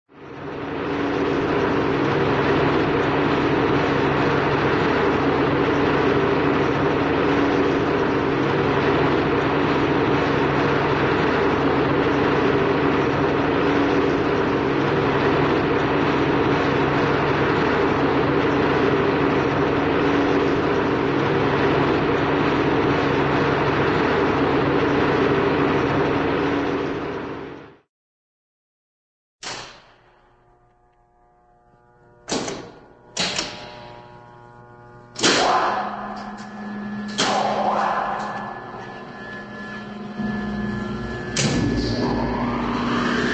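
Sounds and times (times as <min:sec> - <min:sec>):
cartoon motor generator running steady: 0:00.1 - 0:27.8, 0:30.0 - 0:43.3.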